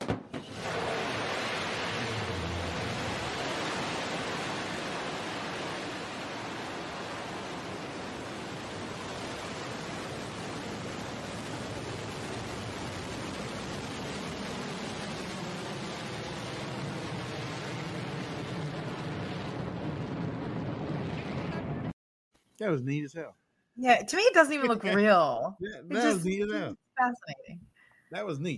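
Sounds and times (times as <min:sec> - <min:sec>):
rocket engines roaring at launch liftoff: 0:00.4 - 0:21.9
speech: 0:22.6 - 0:28.5.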